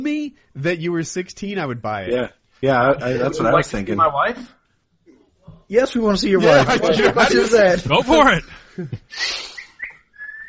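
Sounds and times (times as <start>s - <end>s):
speech: 0.0s - 4.6s, 5.7s - 9.5s
laughter: 6.4s - 9.1s
person whistling short bright tones: 9.2s - 10.4s.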